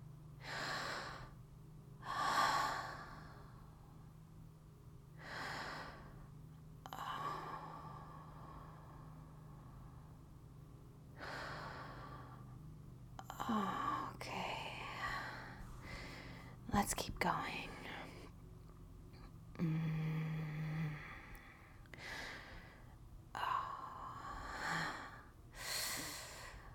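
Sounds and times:
low steady hum: 0:00.0 - 0:26.7
deep breathing: 0:00.4 - 0:01.4, 0:02.0 - 0:04.1, 0:05.1 - 0:10.4, 0:11.1 - 0:12.6, 0:13.2 - 0:16.7, 0:19.5 - 0:26.7.

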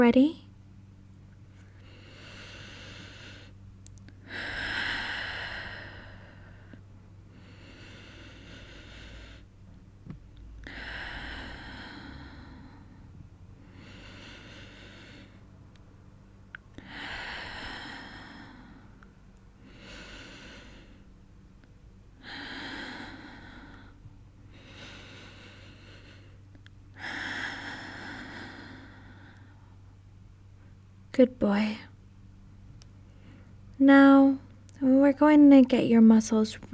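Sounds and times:
speech: 0:00.0 - 0:00.4, 0:31.2 - 0:31.9, 0:33.8 - 0:36.7
slow deep breathing during a guided relaxation exercise: 0:01.4 - 0:15.9, 0:16.6 - 0:21.4, 0:22.1 - 0:30.0, 0:33.0 - 0:33.7.

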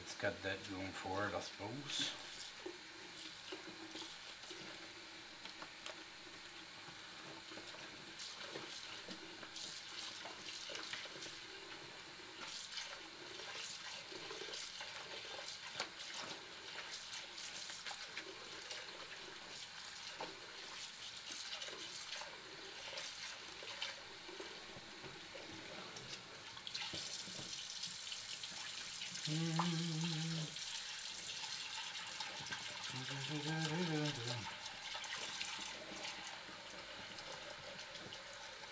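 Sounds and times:
kitchen tap water running while rinsing something: 0:00.0 - 0:38.7
speech: 0:00.2 - 0:02.8
short humming tone: 0:29.3 - 0:30.5.

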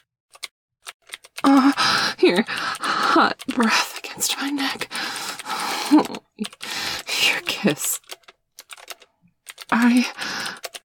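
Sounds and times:
computer keyboard typing: 0:00.0 - 0:10.8
louder voiced sound: 0:01.4 - 0:08.0
speech: 0:01.5 - 0:05.1, 0:05.9 - 0:06.6, 0:07.6 - 0:08.0.

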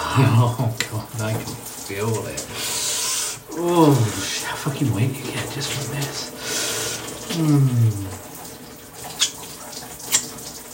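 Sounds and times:
running water with a soft hissing wash: 0:00.0 - 0:10.7
sharp drips or taps: 0:00.0 - 0:10.7
speech: 0:00.2 - 0:02.8, 0:03.6 - 0:06.6, 0:07.3 - 0:08.3
low voice moaning: 0:07.3 - 0:08.2.

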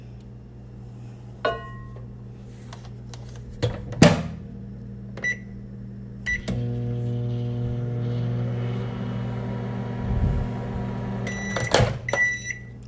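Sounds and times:
microwave oven humming: 0:00.0 - 0:12.8
microwave oven door clunk: 0:03.6 - 0:04.4
microwave oven button beeps: 0:05.2 - 0:05.6, 0:06.3 - 0:06.6, 0:11.2 - 0:12.8.

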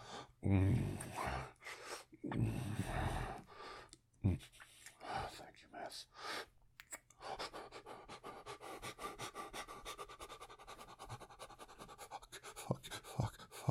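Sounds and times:
speech: 0:00.5 - 0:01.2, 0:02.2 - 0:03.5
heavy rapid panting close to the microphone: 0:07.2 - 0:13.7.

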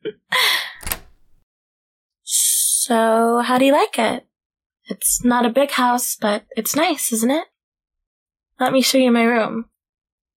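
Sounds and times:
faint rattle of the front door being locked: 0:00.8 - 0:01.4
house front door creaking as it swings: 0:00.8 - 0:01.4
speech: 0:02.9 - 0:04.3, 0:04.9 - 0:07.5, 0:08.6 - 0:09.7.

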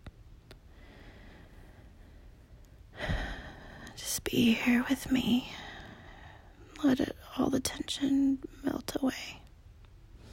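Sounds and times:
soft slow steady breathing in and out: 0:00.5 - 0:06.7, 0:10.1 - 0:10.3
speech: 0:04.3 - 0:05.6, 0:06.8 - 0:09.4.

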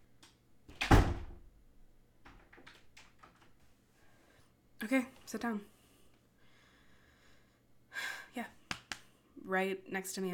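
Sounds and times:
door shutting with a solid thump: 0:00.7 - 0:01.4
speech: 0:04.9 - 0:05.7, 0:09.5 - 0:10.3.

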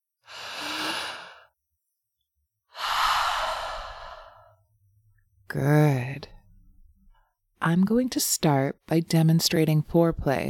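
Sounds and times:
deep breath during a relaxation exercise on a mat: 0:00.2 - 0:01.6, 0:02.7 - 0:04.7
speech: 0:05.5 - 0:06.4, 0:07.6 - 0:10.4.

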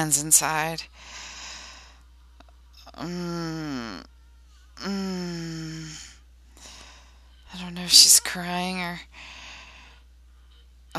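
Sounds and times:
speech: 0:00.0 - 0:01.2, 0:03.0 - 0:04.1, 0:04.8 - 0:06.0, 0:07.5 - 0:09.4
heavy breathy exhalations: 0:00.9 - 0:02.1, 0:04.8 - 0:07.4, 0:09.1 - 0:10.1
woman moaning: 0:02.8 - 0:09.4.

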